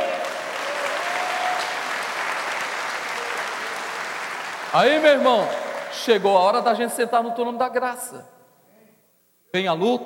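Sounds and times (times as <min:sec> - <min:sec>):
audience applauding: 0:00.0 - 0:06.7
speech: 0:04.7 - 0:08.3, 0:09.5 - 0:10.0.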